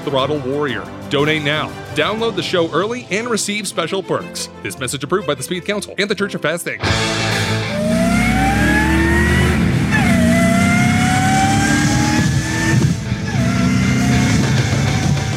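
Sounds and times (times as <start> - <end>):
speech: 0.0 - 7.6
Volvo 240 supercharger whine climbing in pitch: 6.9 - 15.3
supercharged Volvo 240 car engine revving: 6.9 - 15.3.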